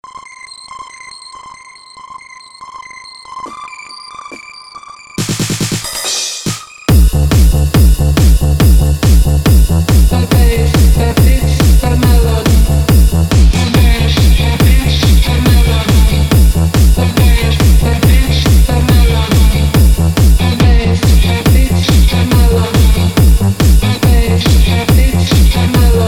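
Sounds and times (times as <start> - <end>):
bass beats: 5.2 - 5.9, 6.5 - 26.0.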